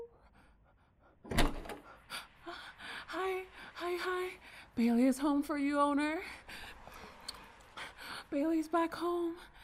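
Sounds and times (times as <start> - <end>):
door opening with a solid thunk: 1.2 - 2.0
speech: 4.8 - 6.4, 8.3 - 9.5.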